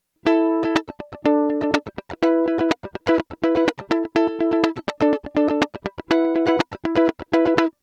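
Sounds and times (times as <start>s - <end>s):
electric mandolin chords: 0.2s - 7.8s.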